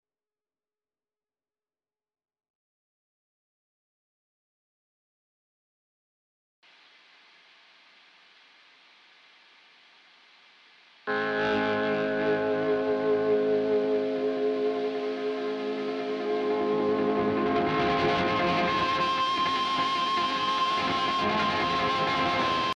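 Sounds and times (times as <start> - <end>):
guitar feedback: 11.1 - 22.7.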